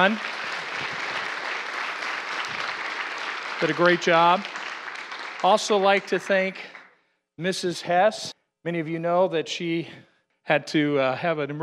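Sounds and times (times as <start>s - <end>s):
speech: 0.0s - 0.4s, 3.6s - 4.5s, 5.4s - 6.7s, 7.4s - 11.6s
audience applauding young performers after an evening show: 0.0s - 6.9s.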